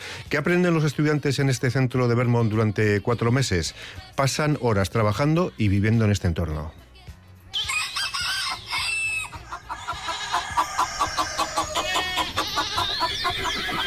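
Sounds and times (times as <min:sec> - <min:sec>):
speech: 0:00.3 - 0:06.8
flock of chickens clucking and squawking on a farm: 0:07.5 - 0:13.8
rooster crowing: 0:07.6 - 0:13.8.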